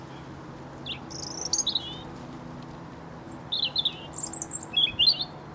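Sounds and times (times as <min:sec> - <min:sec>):
European robin singing high-pitched trills: 0:00.1 - 0:02.1, 0:03.3 - 0:05.4.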